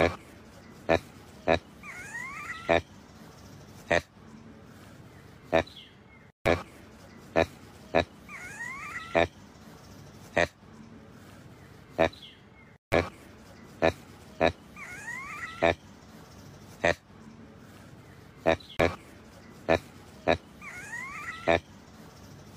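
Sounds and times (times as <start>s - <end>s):
proboscis monkey giving short gruff grunts: 0.0s - 3.0s, 6.5s - 9.4s, 12.9s - 15.9s, 18.4s - 21.8s
faint background noise: 0.0s - 22.5s.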